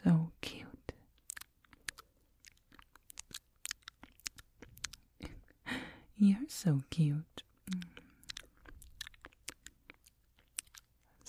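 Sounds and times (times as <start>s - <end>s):
binaural wet mouth clicks and smacks: 1.1s - 5.6s, 7.5s - 11.2s
speech: 6.2s - 7.8s.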